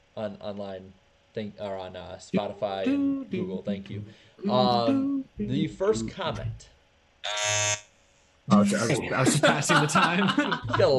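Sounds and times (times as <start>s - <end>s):
speech: 0.2s - 7.7s, 8.6s - 10.9s
voice imitating a basketball shot clock buzzer: 2.4s - 3.6s, 4.4s - 5.6s, 7.2s - 7.8s
laughter: 4.5s - 5.1s, 8.5s - 10.9s.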